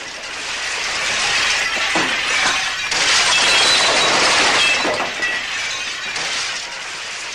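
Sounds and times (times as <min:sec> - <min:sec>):
glass shards tinkling: 0:00.0 - 0:07.3
large amounts of glass shattering outside a glass and mirror factory: 0:00.0 - 0:07.3.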